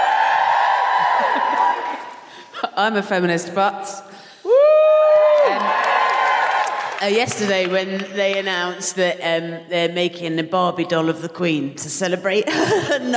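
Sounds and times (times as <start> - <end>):
live audience cheering and whooping: 0.0 - 2.4, 4.5 - 7.0
laughter: 1.0 - 2.5, 12.5 - 13.1
speech: 2.8 - 4.1, 7.0 - 13.1.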